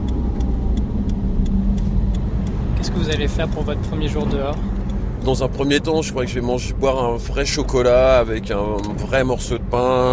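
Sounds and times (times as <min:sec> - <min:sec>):
faint regular ticks: 0:00.0 - 0:05.8
old police car engine running: 0:00.0 - 0:10.1
speech: 0:02.9 - 0:10.1.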